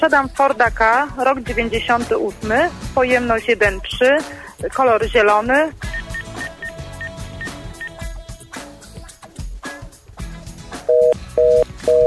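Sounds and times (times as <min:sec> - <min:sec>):
speech: 0:00.0 - 0:06.0
music: 0:00.0 - 0:12.0
telephone busy signal after a radio call-in line disconnects: 0:05.9 - 0:08.0, 0:10.9 - 0:12.0.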